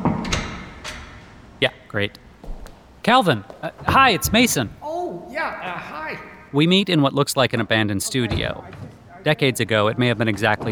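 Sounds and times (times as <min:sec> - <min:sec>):
door latch or handle turning click: 0:00.2 - 0:01.6
speech: 0:01.6 - 0:02.3, 0:03.1 - 0:04.8, 0:05.4 - 0:10.7.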